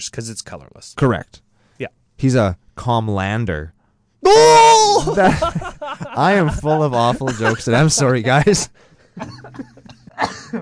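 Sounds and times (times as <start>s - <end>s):
speech: 0.0s - 10.6s
laughter: 5.0s - 10.6s
harsh coughing fit: 9.2s - 10.6s.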